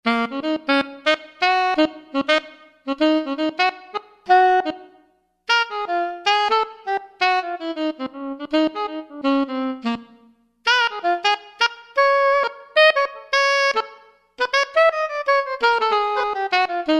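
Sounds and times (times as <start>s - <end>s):
alto saxophone velocity sample: 0.0s - 16.9s.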